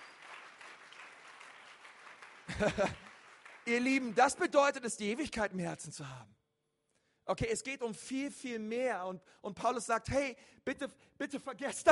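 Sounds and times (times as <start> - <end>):
audience applause: 0.0 - 4.5
laughter: 2.4 - 3.2
speech: 2.6 - 3.0, 3.7 - 6.4, 7.3 - 11.9.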